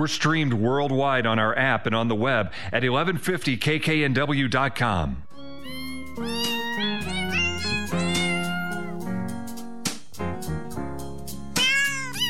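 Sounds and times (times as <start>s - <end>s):
speech: 0.0s - 5.3s
steady musical backing: 5.2s - 12.2s
cat meows pitched into a bouncy Christmas melody: 5.3s - 9.1s, 11.5s - 12.2s.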